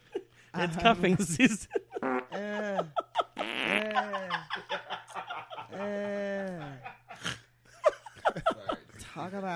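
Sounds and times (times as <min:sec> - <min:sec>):
laughter: 0:00.0 - 0:08.9
speech: 0:00.6 - 0:03.0, 0:09.2 - 0:09.5
person making fart noises with their mouth: 0:02.0 - 0:02.3, 0:03.4 - 0:04.0.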